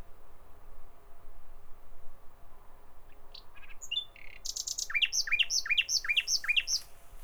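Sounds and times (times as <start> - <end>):
common nightingale singing: 3.3 - 6.9.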